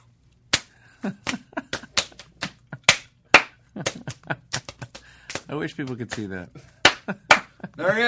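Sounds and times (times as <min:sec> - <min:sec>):
hands slapping body in a slap dance: 0:00.5 - 0:07.5
speech: 0:01.0 - 0:01.4, 0:05.5 - 0:07.2, 0:07.8 - 0:08.0.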